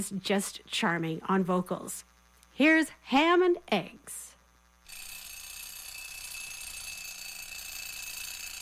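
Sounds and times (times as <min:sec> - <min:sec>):
speech: 0:00.0 - 0:04.3
mechanical alarm clock ringing: 0:04.9 - 0:08.6.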